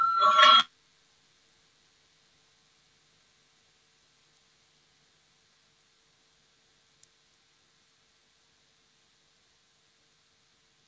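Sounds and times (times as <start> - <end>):
electric bell ringing to call a parliamentary vote: 0.0 - 0.7.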